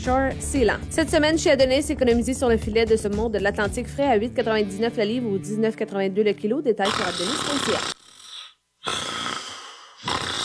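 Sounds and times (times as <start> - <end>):
speech: 0.0 - 8.0
person snoring: 6.8 - 10.4.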